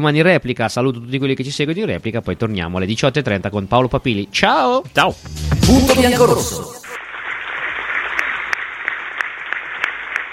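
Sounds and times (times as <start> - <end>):
speech: 0.0 - 6.8
crowd applause: 5.7 - 10.3.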